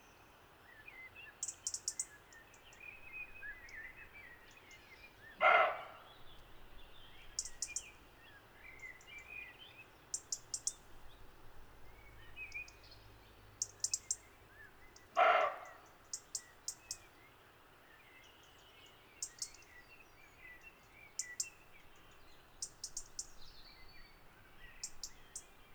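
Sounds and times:
birds chirping and twittering: 0.7 - 25.7
roe deer Capreolus capreolus barking in woodland undergrowth: 5.4 - 7.8, 15.1 - 16.3
short high, thin bird calls: 15.2 - 15.8.

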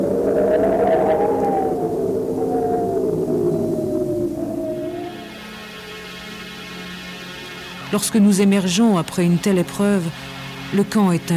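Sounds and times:
wind on sea ice howling and battering a tent: 0.0 - 5.7
speech: 7.9 - 11.3.

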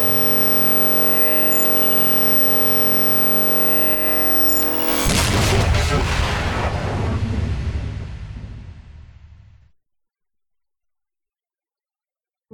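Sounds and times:
steady droning tone: 0.0 - 5.1
gunshot in a dramatic fiction scene: 4.9 - 9.7.

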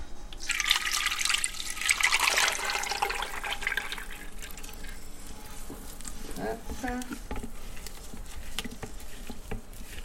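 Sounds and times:
organic olive oil poured into a pot while making soap: 0.4 - 5.0
speech: 6.8 - 7.3.

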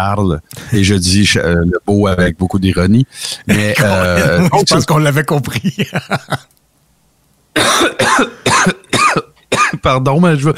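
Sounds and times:
speech: 0.0 - 6.6, 7.6 - 8.8, 9.8 - 10.5
laughter: 3.5 - 6.5
coughing fit with choking: 7.6 - 9.8.

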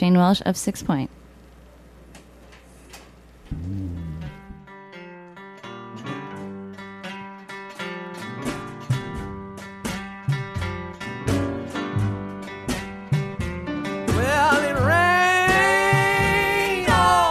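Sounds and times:
speech: 0.0 - 1.2
person singing: 3.5 - 4.7, 14.1 - 17.2
full band playing a song with punchy rhythm and bright chords: 10.3 - 17.2.

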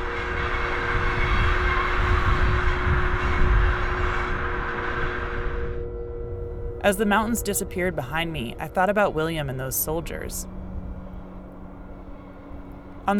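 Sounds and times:
constant droning hum of a train: 0.0 - 13.1
train rolling along the rails heard from inside: 0.0 - 13.1
speech: 6.8 - 10.6.

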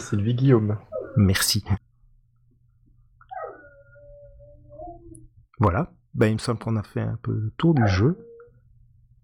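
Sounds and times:
speech: 0.0 - 1.9, 5.6 - 8.3
steady low hum: 0.0 - 9.2
dog howling outside: 0.9 - 1.4, 3.3 - 5.3, 7.8 - 8.6.

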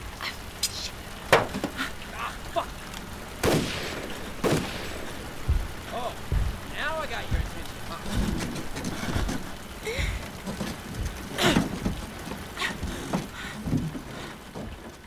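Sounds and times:
steady rain hissing and pattering: 0.0 - 15.0
speech: 2.6 - 2.8
thumps: 4.3 - 14.9.

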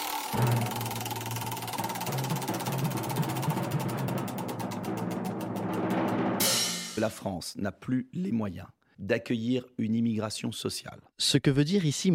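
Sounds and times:
spinning prize wheel pointer ticking against pegs: 0.0 - 6.9
steady low hum: 0.3 - 6.5
speech: 7.0 - 12.1.

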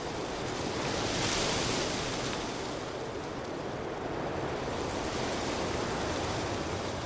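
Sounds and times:
aspen tree leaves trembling in the wind: 0.0 - 7.0.

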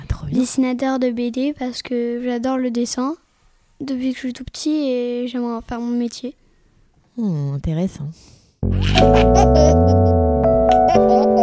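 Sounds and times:
speech: 0.3 - 3.2, 3.8 - 6.4, 7.2 - 10.2
baby laughing with squealing giggles: 8.7 - 11.4.

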